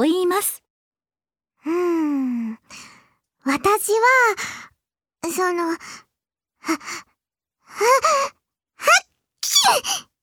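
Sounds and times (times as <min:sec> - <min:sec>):
speech: 0:00.0 - 0:00.6, 0:03.6 - 0:06.0, 0:06.6 - 0:07.1, 0:07.7 - 0:09.0, 0:09.6 - 0:10.1
voice acting out a sneeze: 0:09.4 - 0:09.8.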